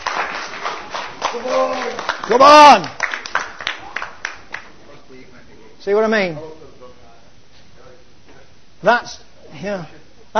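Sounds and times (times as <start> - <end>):
audience clapping for a performer: 0.0 - 4.8
man letting out a loud drawn-out vocal shout: 1.3 - 3.0
speech: 1.3 - 3.0, 5.8 - 6.5, 8.8 - 10.3.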